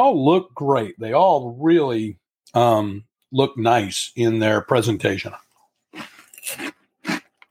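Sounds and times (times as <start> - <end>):
speech: 0.0 - 5.4, 6.0 - 6.8
snack chips being bitten and chewed: 5.9 - 7.4.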